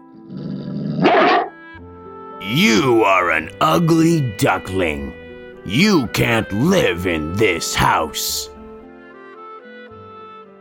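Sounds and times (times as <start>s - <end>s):
dog growling and snarling: 0.0s - 1.5s
speech: 2.4s - 8.5s.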